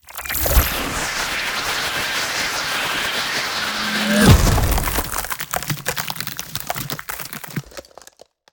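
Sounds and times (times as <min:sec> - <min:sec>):
ultimate ice spell sound effect: 0:00.1 - 0:06.3.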